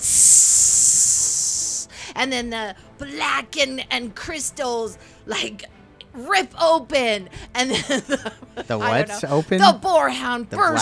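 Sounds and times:
loud steady sizzling hiss of air: 0.0 - 2.0
speech: 2.2 - 10.7.

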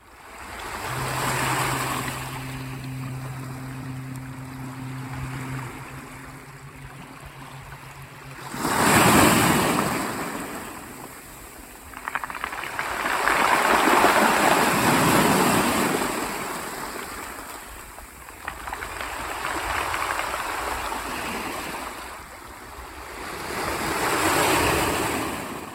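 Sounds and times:
low steady hum: 0.0 - 19.0
waves crashing and washing over large grains of sand: 0.0 - 25.7.

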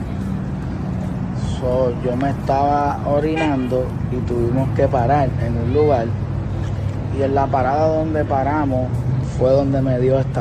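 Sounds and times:
low road rumble of a car driving along a highway: 0.0 - 10.3
speech: 1.6 - 6.2, 7.2 - 10.3.

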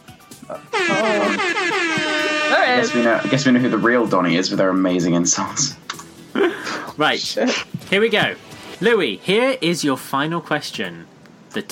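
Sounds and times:
speech: 0.5 - 5.8, 7.0 - 11.7
loud sustained air horn blast: 0.6 - 4.4.

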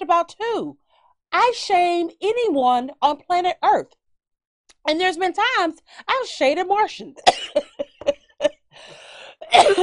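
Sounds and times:
speech: 0.1 - 4.0, 4.8 - 7.7, 8.8 - 9.8
person coughing from allergy: 7.3 - 8.1, 9.4 - 9.8
rough raspy breath: 8.7 - 9.5.

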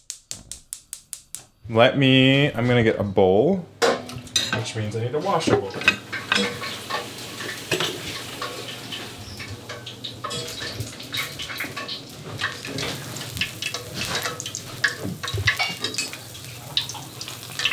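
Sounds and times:
speech: 1.7 - 3.7, 4.6 - 6.0
hot oil sizzling and crackling in a pan for frying dough: 5.9 - 17.7.

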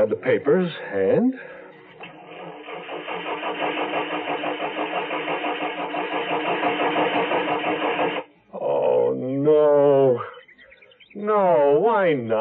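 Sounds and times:
speech: 0.0 - 1.6, 9.5 - 10.3, 11.2 - 12.4
car engine cranking without catching: 1.9 - 8.3.

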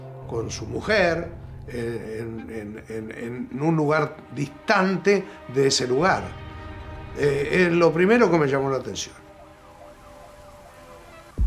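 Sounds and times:
speech: 0.3 - 6.4, 7.2 - 9.2
ambulance siren wailing at night: 8.2 - 11.4.

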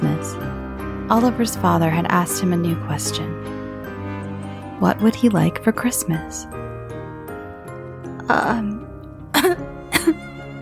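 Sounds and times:
speech: 1.1 - 3.6, 4.8 - 6.6, 8.3 - 8.8
person clearing throat: 9.4 - 10.2
person coughing: 9.4 - 10.2.

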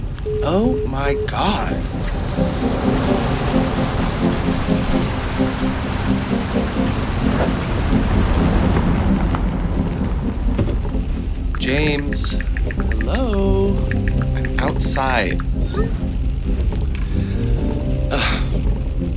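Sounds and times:
speech: 0.3 - 2.9, 11.7 - 12.5, 13.1 - 14.0, 14.6 - 16.0
heavy rain pouring on a car being driven: 1.7 - 11.6, 14.8 - 19.1.

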